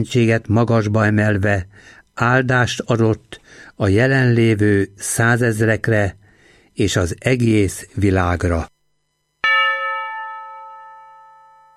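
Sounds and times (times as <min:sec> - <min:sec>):
speech: 0:00.0 - 0:06.2, 0:06.8 - 0:08.7
church bell stroke: 0:09.4 - 0:11.7.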